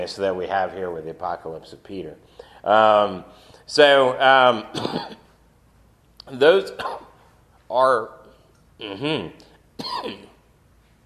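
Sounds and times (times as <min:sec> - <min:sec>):
speech: 0:00.0 - 0:05.2, 0:06.3 - 0:07.1, 0:07.7 - 0:08.2, 0:08.8 - 0:10.3
man clearing his throat: 0:04.7 - 0:05.3, 0:06.8 - 0:07.2, 0:08.8 - 0:10.4.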